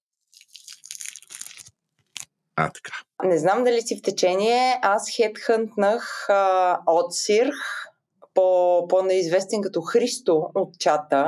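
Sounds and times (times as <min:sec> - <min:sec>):
peeled orange being pulled apart: 0:00.3 - 0:02.3
speech: 0:02.6 - 0:11.2.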